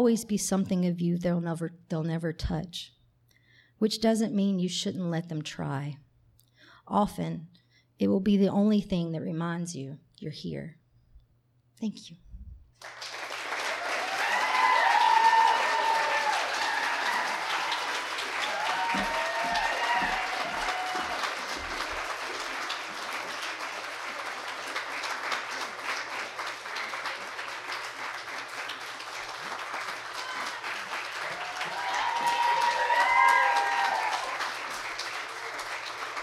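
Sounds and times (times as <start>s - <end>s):
speech: 0.0s - 3.0s, 3.8s - 6.0s, 6.9s - 10.8s, 11.8s - 12.2s
audience applause: 12.8s - 36.2s
faint cheers: 13.6s - 21.7s, 29.8s - 34.6s.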